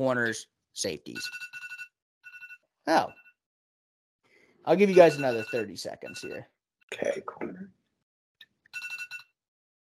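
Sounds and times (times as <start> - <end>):
speech: 0.0 - 1.7, 2.9 - 3.2, 4.6 - 7.7
phone ringtone with chirps and warbling electronic melody: 1.2 - 3.4, 4.7 - 6.4, 8.8 - 9.4.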